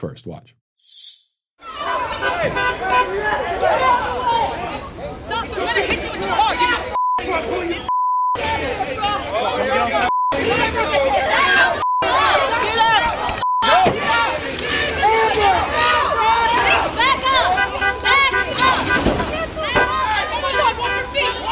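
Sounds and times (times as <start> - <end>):
speech: 0.0 - 14.6
chaotic crowd shouting and yelling: 1.6 - 21.4
honking: 17.2 - 21.4.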